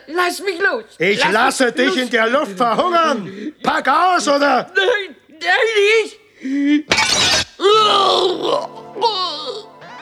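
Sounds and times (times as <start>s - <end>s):
speech: 0.0s - 9.7s
window glass shattering as a steel needle is shot through: 6.9s - 7.6s.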